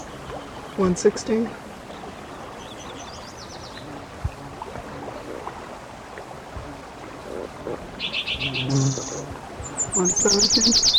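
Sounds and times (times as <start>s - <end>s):
yellow warbler song: 0.0s - 4.1s, 8.0s - 10.9s
speech: 0.8s - 1.6s, 10.2s - 10.9s.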